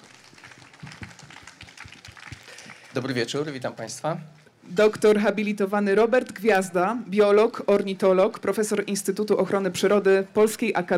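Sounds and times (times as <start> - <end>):
audience applause: 0.0 - 3.2
speech: 2.9 - 10.9.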